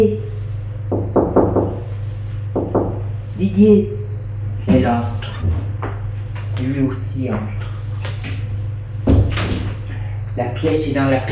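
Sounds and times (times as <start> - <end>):
low steady hum: 0.0 - 11.3
firm knocking on a door: 0.9 - 1.9, 2.6 - 3.1, 9.0 - 9.8
speech: 3.4 - 4.0, 4.7 - 5.5, 6.6 - 7.6, 10.4 - 11.3.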